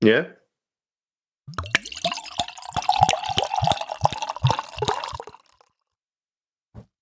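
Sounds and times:
speech: 0.0 - 0.4, 1.5 - 1.7
beer glugging out of an English-inspired glass ale bottle: 1.5 - 5.7.

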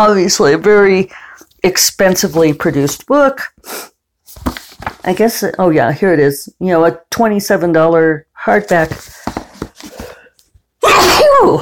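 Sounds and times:
speech: 0.0 - 9.2, 10.8 - 11.6
soft breath: 9.0 - 10.5
person sneezing: 10.8 - 11.6.

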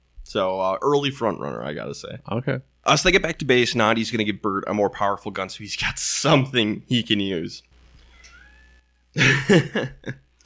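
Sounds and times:
speech: 0.3 - 7.7, 9.2 - 10.2
cat meowing into a microphone: 8.0 - 9.0
laughter: 9.2 - 10.2.

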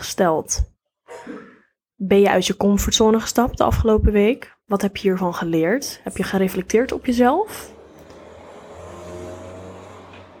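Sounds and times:
speech: 0.1 - 1.4, 2.0 - 7.8
car driving past: 7.4 - 10.3.

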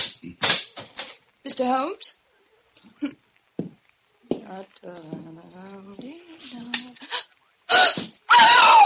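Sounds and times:
speech: 1.4 - 2.2, 2.9 - 3.2, 4.5 - 8.8
woman screaming: 7.7 - 8.8.

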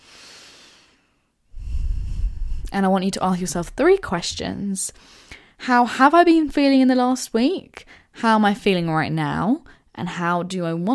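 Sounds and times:
deep breath in and out: 0.0 - 2.9, 5.0 - 5.6
speech: 2.7 - 10.9.

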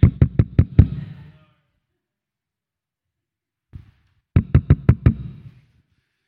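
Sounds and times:
sharp knocking on a door: 0.0 - 1.0, 4.4 - 5.4.

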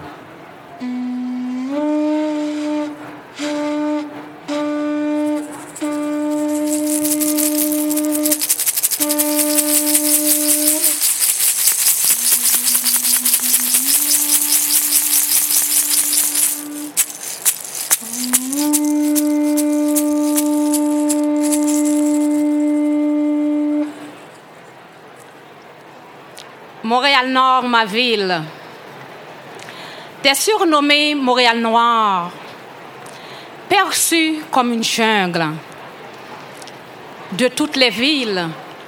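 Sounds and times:
conch shell horn blasts: 0.8 - 24.2
fast steady rattling shaker: 5.2 - 22.9
speech: 27.2 - 28.6, 30.2 - 32.4, 33.8 - 35.7, 37.4 - 38.6.

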